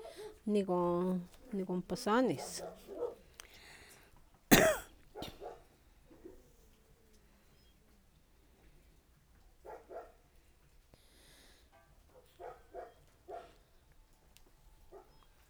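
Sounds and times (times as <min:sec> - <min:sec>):
speech: 0:00.5 - 0:03.0
person coughing: 0:04.5 - 0:04.9.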